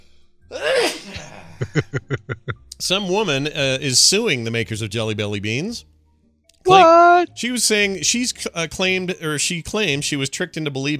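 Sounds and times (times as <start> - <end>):
person sneezing: 0.5 - 1.5, 6.7 - 7.2
laughter: 1.1 - 2.7, 6.7 - 7.2
speech: 1.8 - 2.2, 2.8 - 5.9, 6.7 - 10.9.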